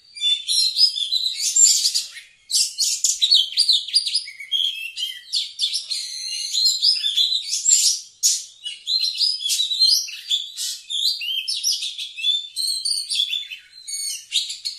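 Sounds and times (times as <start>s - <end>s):
Oriental magpie-robin singing actively: 0.0s - 14.7s.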